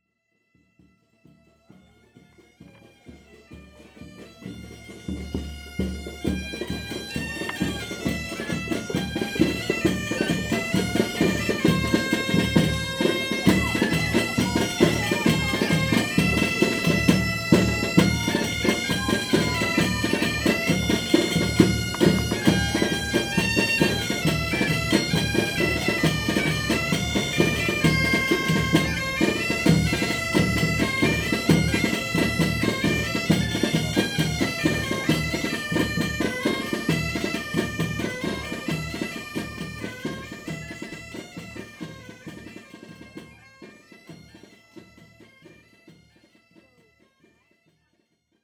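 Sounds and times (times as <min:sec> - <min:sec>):
Galician music from Muros: 0:00.2 - 0:48.4.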